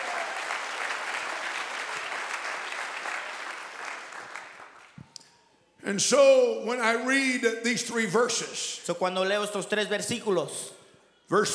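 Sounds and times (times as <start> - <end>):
audience clapping hands in praise: 0.0 - 5.0
speech: 5.9 - 11.5.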